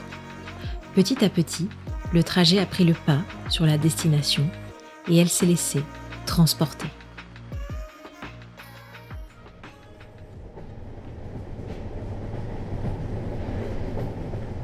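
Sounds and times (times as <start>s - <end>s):
speech: 1.0s - 7.0s
train running on rails: 9.6s - 14.6s.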